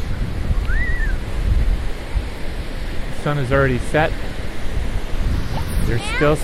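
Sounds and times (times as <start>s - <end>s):
ocean waves on a sandy beach after sunset: 0.0s - 6.4s
high whistling call: 0.6s - 1.2s
speech: 3.2s - 4.3s, 5.9s - 6.4s.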